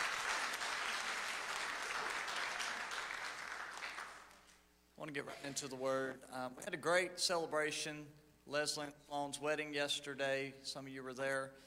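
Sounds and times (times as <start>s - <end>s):
room full of people applauding: 0.0s - 4.6s
speech: 5.0s - 11.6s.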